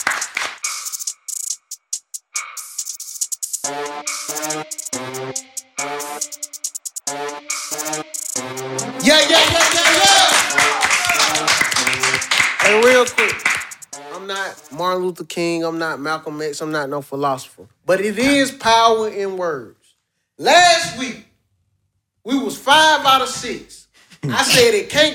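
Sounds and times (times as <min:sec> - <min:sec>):
audience applause: 0:00.0 - 0:00.6, 0:09.0 - 0:13.7
speech: 0:03.7 - 0:06.4, 0:15.1 - 0:19.8, 0:20.4 - 0:21.2, 0:22.7 - 0:25.1.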